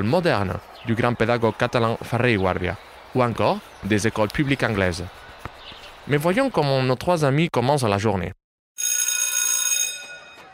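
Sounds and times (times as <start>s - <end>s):
speech: 0.0s - 5.2s, 6.1s - 8.4s
electric school bell ringing to start classes: 8.8s - 10.5s.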